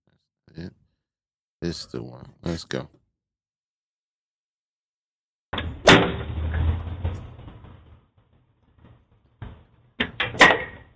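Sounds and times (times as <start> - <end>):
speech: 1.6 - 3.0
rumbling rattle of a door: 5.5 - 10.9
little boy hitting a door with a whip: 5.8 - 7.5.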